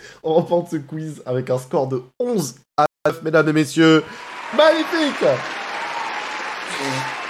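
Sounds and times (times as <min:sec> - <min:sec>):
speech: 0:00.2 - 0:05.6, 0:06.8 - 0:07.2
applause from a small group: 0:04.0 - 0:07.2.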